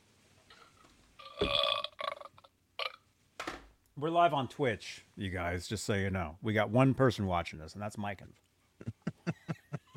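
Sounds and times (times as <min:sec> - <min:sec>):
person burping: 0:01.2 - 0:03.0
speech: 0:04.0 - 0:08.4
laughter: 0:08.8 - 0:09.9.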